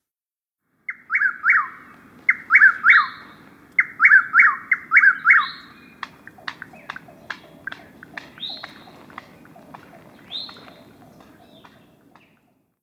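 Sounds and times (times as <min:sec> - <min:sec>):
Chuck-will's-widow giving rolling whistled phrases: 0:00.9 - 0:12.7
sharp clicks: 0:06.0 - 0:12.4.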